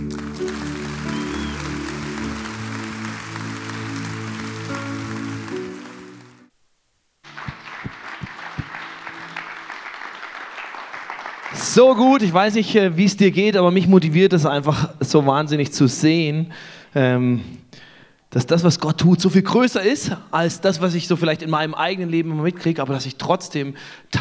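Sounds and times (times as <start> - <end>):
crowd clapping: 0.0 - 6.5, 7.2 - 12.4
humming musical backing: 0.0 - 6.5, 7.3 - 10.5
speech: 11.7 - 24.1.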